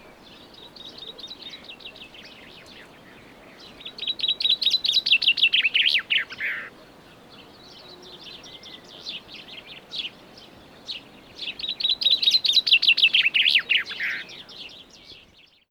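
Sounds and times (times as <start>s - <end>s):
common chaffinch Fringilla coelebs singing descending trill: 0.0s - 15.6s.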